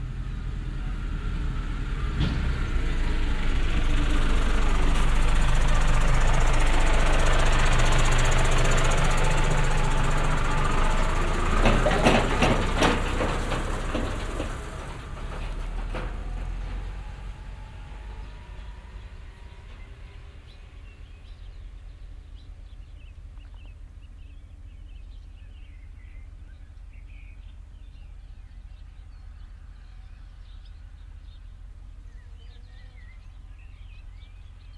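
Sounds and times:
two-stroke engines droning on dirt roads: 0:00.0 - 0:34.7.

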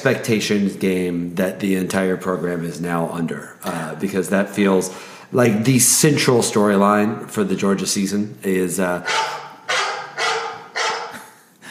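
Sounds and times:
speech: 0:00.0 - 0:09.4
dog barking: 0:09.0 - 0:11.2.

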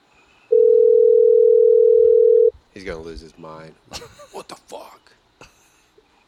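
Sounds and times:
steady electronic telephone call tone while a call is placed: 0:00.5 - 0:02.5
speech: 0:02.8 - 0:05.5.

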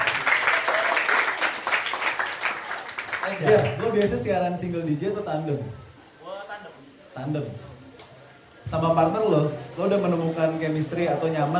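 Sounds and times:
applause from a small group: 0:00.0 - 0:04.3
speech: 0:03.3 - 0:05.8, 0:07.2 - 0:07.7, 0:08.7 - 0:11.5.

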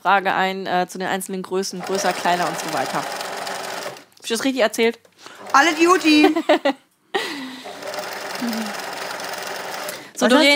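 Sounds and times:
speech: 0:00.0 - 0:03.2, 0:04.3 - 0:06.8, 0:10.2 - 0:10.5
sewing machine whirring: 0:01.8 - 0:04.1, 0:05.3 - 0:06.3, 0:07.6 - 0:10.4
laughter: 0:05.9 - 0:07.8.

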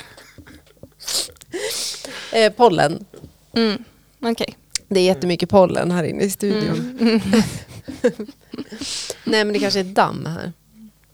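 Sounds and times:
sneeze in a studio: 0:01.0 - 0:02.0
speech: 0:02.3 - 0:10.6
laughter: 0:06.4 - 0:10.1.

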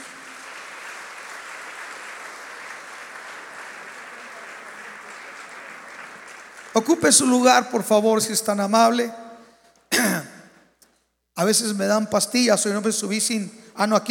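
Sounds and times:
audience applauding at a church service: 0:00.0 - 0:07.5
speech: 0:06.8 - 0:09.2, 0:11.4 - 0:14.0.

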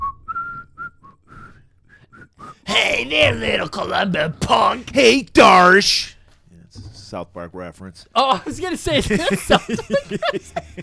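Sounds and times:
man whistling a tune at night: 0:00.0 - 0:02.6
speech: 0:02.8 - 0:06.2, 0:07.1 - 0:10.8
laughter: 0:08.4 - 0:10.8.

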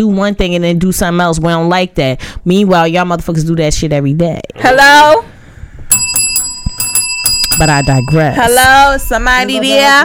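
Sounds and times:
speech: 0:00.0 - 0:05.3, 0:07.6 - 0:10.0
bright bell jingling with metallic shimmer: 0:05.9 - 0:08.7.

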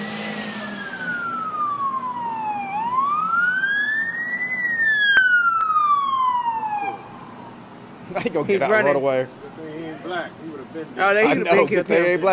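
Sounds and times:
police car siren wailing during a police chase: 0:00.0 - 0:07.8
low rumble of road traffic: 0:00.0 - 0:12.3
speech: 0:08.2 - 0:09.4, 0:10.0 - 0:12.3.

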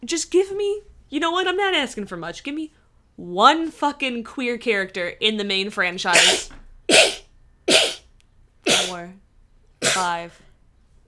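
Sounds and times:
speech: 0:00.0 - 0:07.1, 0:10.0 - 0:10.5
loud sneezes: 0:06.1 - 0:08.0, 0:08.7 - 0:09.0, 0:09.8 - 0:10.2.

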